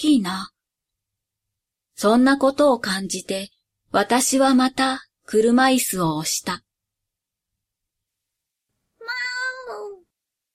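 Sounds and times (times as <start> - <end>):
speech: 0.0 - 0.6, 2.0 - 6.6
slender cat with a swollen belly meowing: 9.0 - 10.0.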